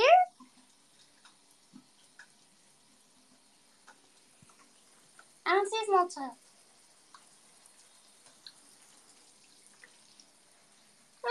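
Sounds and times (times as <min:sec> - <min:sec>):
shower water running: 0:00.0 - 0:11.2
speech: 0:05.7 - 0:06.4.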